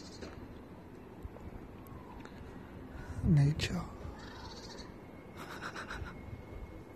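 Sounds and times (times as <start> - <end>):
speech: 3.2 - 4.0
bird calling outdoors in harsh caw-like notes: 4.1 - 5.9.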